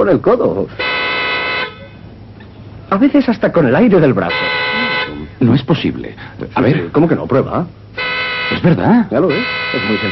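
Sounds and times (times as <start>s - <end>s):
speech: 0.0s - 0.9s, 2.9s - 4.6s, 5.4s - 7.8s, 8.5s - 10.0s
car horn honk: 0.8s - 2.0s, 4.2s - 5.4s, 7.9s - 10.0s.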